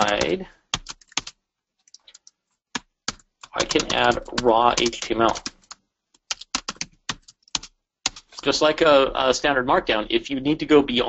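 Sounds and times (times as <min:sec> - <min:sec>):
speech: 0:00.0 - 0:00.6, 0:03.6 - 0:05.6, 0:08.4 - 0:11.0
typing on a computer keyboard: 0:00.0 - 0:08.4.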